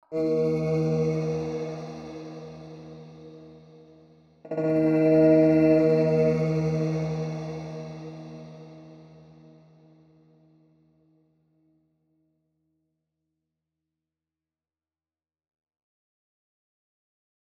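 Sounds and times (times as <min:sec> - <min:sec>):
vocals at 110 bpm in E: 0:00.0 - 0:09.8.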